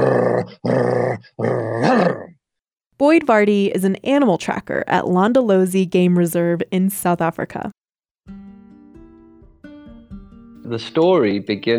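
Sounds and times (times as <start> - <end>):
person's voice imitating a lion's growl: 0.0 - 2.4
speech: 3.2 - 7.8, 10.7 - 11.7.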